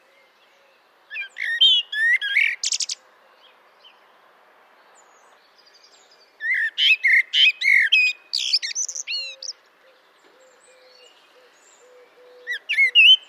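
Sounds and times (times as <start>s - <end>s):
common blackbird uttering squeaky chirping notes and sharp high clicks: 1.1s - 3.0s, 6.4s - 9.6s, 11.8s - 13.2s.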